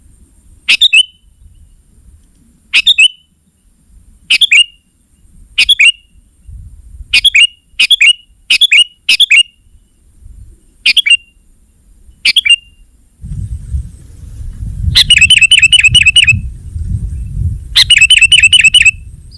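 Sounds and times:
Sooty-headed bulbul singing: 0:00.7 - 0:01.7, 0:02.7 - 0:03.4, 0:04.3 - 0:04.9, 0:05.6 - 0:06.2, 0:07.1 - 0:10.0, 0:10.8 - 0:11.4, 0:12.1 - 0:12.9, 0:15.0 - 0:16.5, 0:17.8 - 0:19.3
low rumble: 0:13.2 - 0:17.8.

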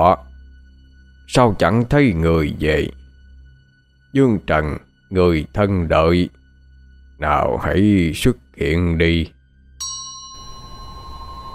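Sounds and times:
speech: 0:00.0 - 0:00.3, 0:01.3 - 0:03.0, 0:04.1 - 0:06.4, 0:07.2 - 0:09.4
hand bell ringing during a spirit-summoning ritual: 0:09.8 - 0:11.5.

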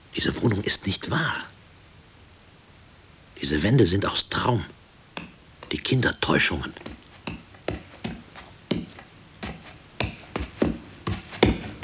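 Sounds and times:
low hiss: 0:00.0 - 0:11.8
speech: 0:00.2 - 0:01.6, 0:03.4 - 0:04.8, 0:05.7 - 0:07.0
dull woody knocking: 0:05.2 - 0:05.8, 0:06.7 - 0:11.8.

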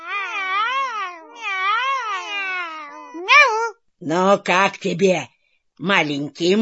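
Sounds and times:
cats meowing at feeding time: 0:00.0 - 0:03.7
speech: 0:04.0 - 0:06.5.

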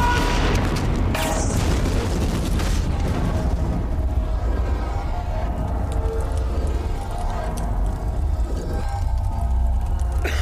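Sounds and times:
oxygen cylinders exploding after being shot: 0:00.0 - 0:05.4
heavy rumbling roar: 0:00.0 - 0:10.3.

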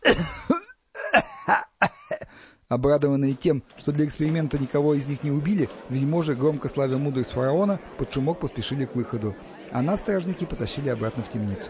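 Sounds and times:
consumptive coughing fit acted out by a human voice: 0:00.0 - 0:02.4
speech: 0:02.7 - 0:11.6.

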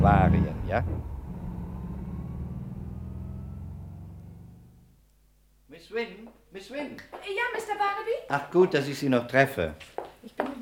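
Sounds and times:
car engine droning as a car drives: 0:00.0 - 0:05.1
speech: 0:00.3 - 0:01.2, 0:05.8 - 0:10.6.

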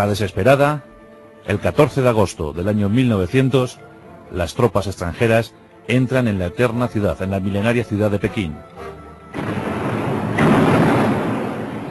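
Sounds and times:
speech: 0:00.0 - 0:09.6
cannon fire sound effect: 0:09.3 - 0:11.8.

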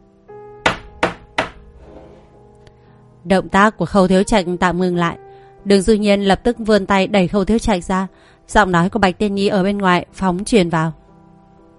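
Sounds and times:
heavy bangs on the door of a quiet room: 0:00.6 - 0:01.6
speech: 0:03.2 - 0:11.0.

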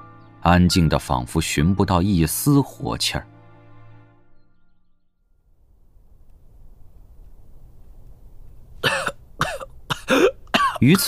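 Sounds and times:
speech: 0:00.4 - 0:03.3, 0:10.8 - 0:11.0
harsh prolonged coughing of an ailing king in a palace hall: 0:08.8 - 0:11.0.

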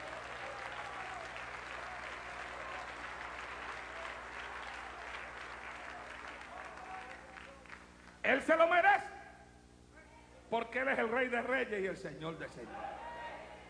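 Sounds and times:
church congregation applauding during a worship service: 0:00.0 - 0:08.6
speech: 0:08.3 - 0:09.0, 0:10.5 - 0:13.0.

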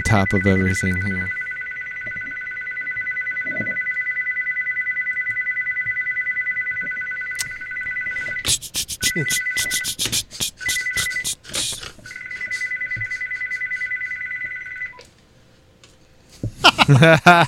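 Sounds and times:
loud electronic telephone ringtone: 0:00.0 - 0:10.0, 0:12.1 - 0:15.0
speech: 0:00.1 - 0:01.4, 0:09.2 - 0:09.8, 0:16.9 - 0:17.4
laughter: 0:16.6 - 0:17.4.

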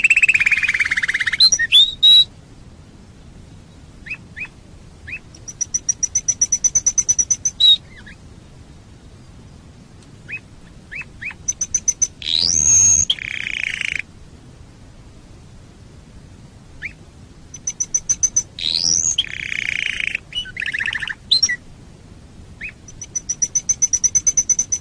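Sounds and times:
canary song with rapid high trills and buzzy warbled phrases: 0:00.0 - 0:02.3, 0:04.0 - 0:08.2, 0:10.3 - 0:14.1, 0:16.8 - 0:21.6, 0:22.6 - 0:24.8.

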